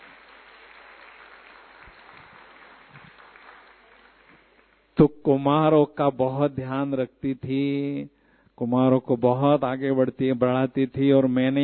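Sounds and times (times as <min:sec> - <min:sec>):
audience applause: 0:00.0 - 0:04.8
speech: 0:05.0 - 0:11.6.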